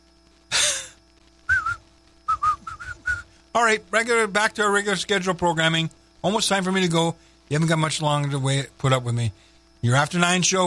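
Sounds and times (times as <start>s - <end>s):
person whistling short clear notes: 1.5s - 3.3s
speech: 3.6s - 10.6s.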